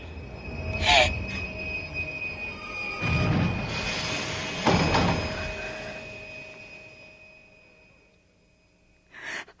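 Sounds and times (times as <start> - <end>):
subway train wheels letting out high metallic squeals: 0.0 - 8.8
subway train rumbling and braking to a stop: 0.0 - 9.1
final clunk of the subway car: 4.4 - 5.9.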